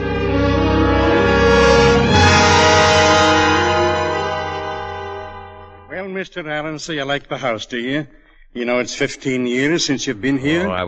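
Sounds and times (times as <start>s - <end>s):
train horn blaring: 0.0s - 6.0s
speech: 6.2s - 10.8s.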